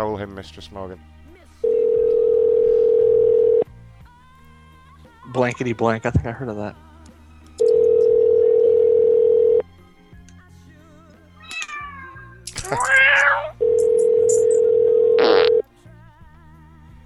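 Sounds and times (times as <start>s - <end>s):
speech: 0.0s - 1.2s, 5.3s - 6.8s
telephone line dial tone: 1.6s - 3.7s, 7.6s - 9.6s, 13.6s - 15.7s.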